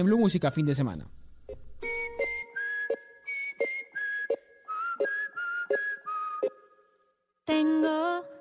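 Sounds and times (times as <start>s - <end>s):
speech: 0.0s - 1.2s
bright whistled melody: 1.8s - 7.1s.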